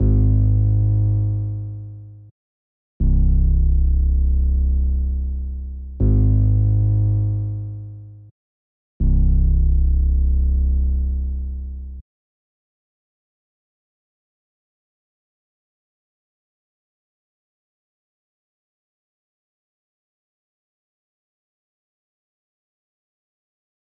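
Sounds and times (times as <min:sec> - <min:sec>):
Moog Sub Phatty synth bass in C minor: 0:00.0 - 0:02.3, 0:03.0 - 0:08.3, 0:09.0 - 0:12.0.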